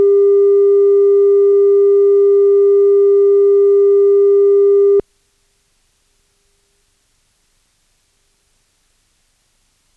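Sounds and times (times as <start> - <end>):
0dB 315Hz calibration tone: 0.0 - 5.0.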